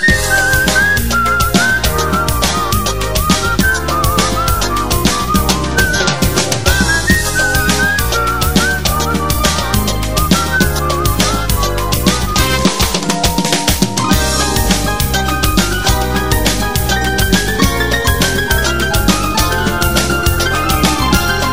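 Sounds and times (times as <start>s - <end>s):
band accompaniment with driving bass and percussion: 0.0s - 21.5s
bright cheerful whistled melody: 0.0s - 21.5s.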